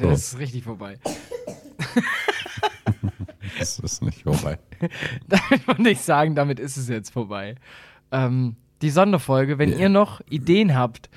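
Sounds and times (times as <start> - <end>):
speech: 0.0 - 2.8, 3.5 - 11.1
person coughing: 1.0 - 2.0
laughter-like breathing: 1.9 - 4.0, 4.7 - 5.4.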